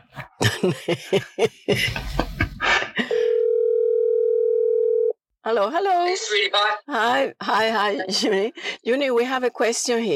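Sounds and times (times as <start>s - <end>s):
laughter: 0.0s - 3.2s
speech: 0.5s - 2.3s, 5.5s - 10.1s
telephone dial tone while a call is placed: 3.3s - 5.2s.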